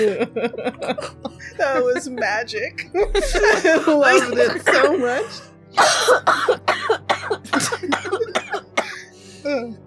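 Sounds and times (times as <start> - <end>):
laughter: 0.0 - 2.2, 3.0 - 5.1
speech: 0.0 - 8.4, 9.4 - 9.8
harsh coughing fit after hard laughter: 3.2 - 5.0, 5.8 - 9.2.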